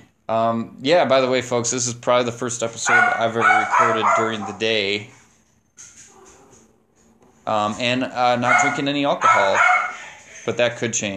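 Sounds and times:
speech: 0.3s - 5.2s, 7.5s - 9.7s, 10.4s - 11.1s
dog giving high-pitched barks and yips: 2.8s - 4.7s, 8.4s - 10.2s.

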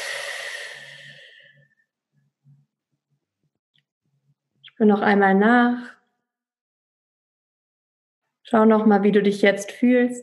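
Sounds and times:
deep breath out during a guided calm-breathing exercise: 0.0s - 1.6s
soft faint breath sounds: 0.0s - 1.8s
speech: 4.8s - 6.0s, 8.5s - 10.2s.

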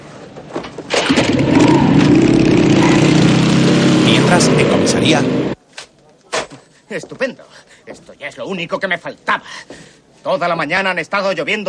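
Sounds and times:
motorcycle engine starting and revving: 0.9s - 5.6s
speech: 4.3s - 5.4s, 6.9s - 11.6s.

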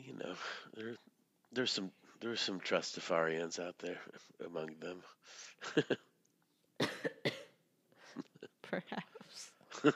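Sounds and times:
speech: 0.2s - 6.1s, 8.7s - 9.9s
person coughing: 6.8s - 7.6s.

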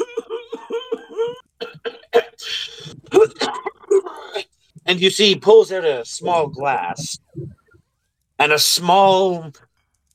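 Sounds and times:
voice imitating a man clearing his throat: 0.0s - 4.5s
speech: 4.9s - 7.2s, 8.4s - 9.7s.

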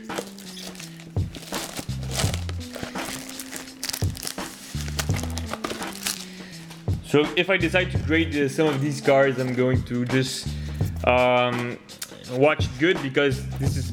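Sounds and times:
brown packing paper crinkling and crumpling: 0.0s - 6.8s
speech: 7.1s - 13.9s.

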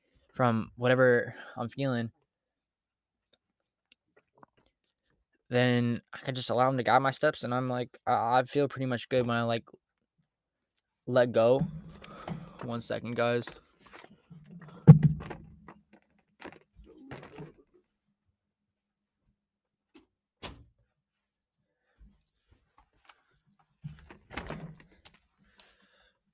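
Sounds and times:
speech: 0.4s - 2.2s, 5.5s - 9.8s, 11.1s - 12.0s, 12.6s - 13.6s
door pushed shut with a solid thud and rattling clicks: 14.8s - 15.6s.

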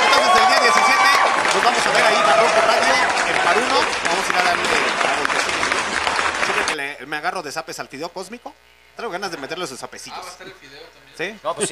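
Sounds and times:
crowd applauding: 0.0s - 6.8s
speech: 7.1s - 11.6s.

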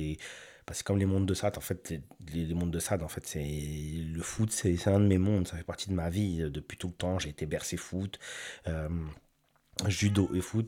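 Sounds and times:
speech: 0.0s - 9.2s, 9.8s - 10.6s
cat meowing: 9.8s - 10.6s.

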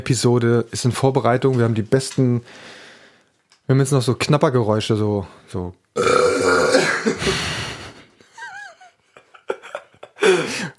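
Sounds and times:
speech: 0.0s - 2.8s, 3.7s - 7.6s
long loud burp: 6.0s - 7.2s.

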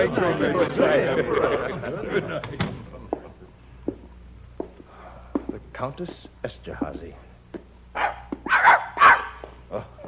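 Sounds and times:
speech: 0.0s - 2.7s, 5.8s - 7.3s
laughter: 0.0s - 3.1s
faint low hum: 0.0s - 10.0s
dog barking: 8.0s - 9.4s.

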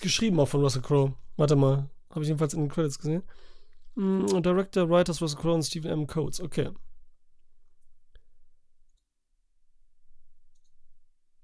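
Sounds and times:
speech: 0.0s - 6.9s
soft computer mouse clicks: 10.5s - 10.8s.

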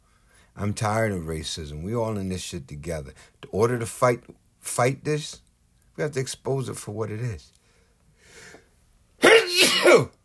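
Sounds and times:
speech: 0.6s - 5.4s, 6.0s - 7.6s, 9.9s - 10.2s
person sneezing: 9.2s - 10.2s.

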